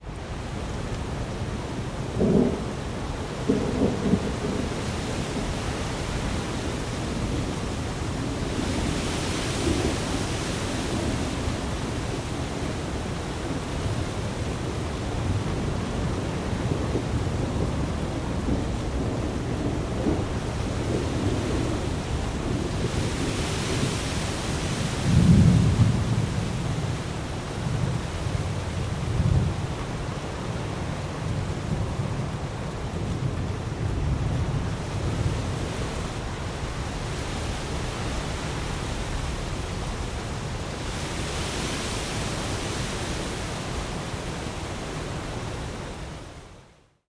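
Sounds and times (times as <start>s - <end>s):
rainfall in a thunderstorm: 0.0s - 47.0s
thunderstorm: 2.2s - 2.7s, 3.4s - 5.6s, 16.1s - 24.0s, 25.0s - 26.5s.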